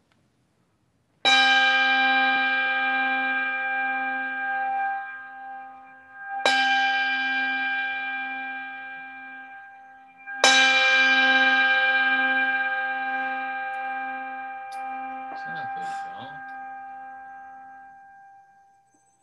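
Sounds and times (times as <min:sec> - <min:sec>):
church bell tolling to begin a worship service: 0:01.3 - 0:18.8
faint voice murmuring: 0:15.4 - 0:16.5.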